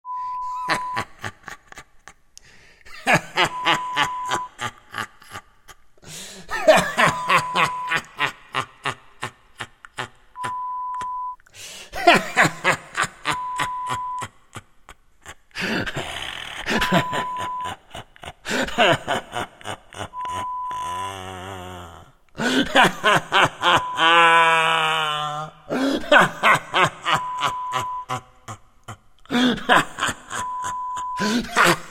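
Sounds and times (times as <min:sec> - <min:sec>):
evil laughter: 0:00.4 - 0:02.2, 0:02.9 - 0:05.8, 0:06.4 - 0:10.6, 0:12.0 - 0:31.9.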